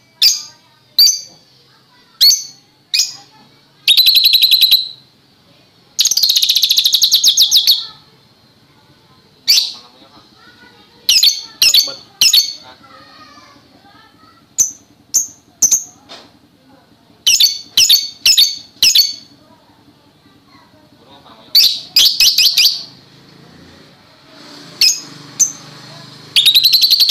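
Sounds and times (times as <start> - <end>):
Oriental magpie-robin song: 0.0 - 1.4, 2.2 - 5.0, 6.0 - 8.0, 9.4 - 9.8, 11.0 - 12.7, 17.2 - 19.3, 21.6 - 23.0, 26.4 - 27.0
faint low hum: 0.0 - 24.3.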